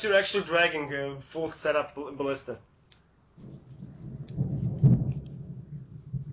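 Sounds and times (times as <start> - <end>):
speech: 0.0 - 2.7, 3.4 - 3.7
thunder rumbling from a coming storm: 3.4 - 6.3.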